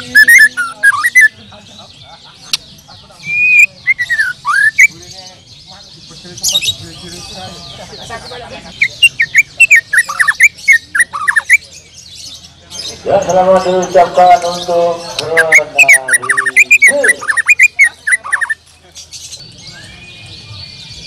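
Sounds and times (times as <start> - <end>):
bird song: 0.0 - 21.0
laughter: 0.6 - 3.4, 7.2 - 9.4
speech: 13.1 - 15.8.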